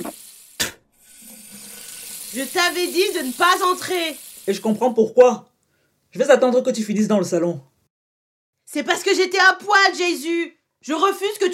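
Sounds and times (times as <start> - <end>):
water streaming from a sink tap into the basin: 0.0 - 5.0
person rinsing mouth at a running sink tap: 1.0 - 4.8
speech: 2.3 - 5.5, 6.1 - 7.7, 8.7 - 11.5.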